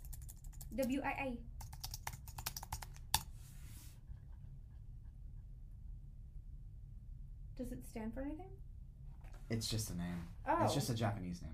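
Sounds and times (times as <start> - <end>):
typing on a computer keyboard: 0.0 - 1.0, 1.6 - 3.3
low steady hum: 0.0 - 11.5
speech: 0.7 - 1.6, 7.6 - 8.7, 9.5 - 11.5.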